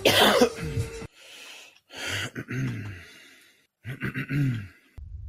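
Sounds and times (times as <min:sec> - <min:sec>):
person clearing throat: 0:00.1 - 0:00.9, 0:02.2 - 0:03.1, 0:03.9 - 0:04.9.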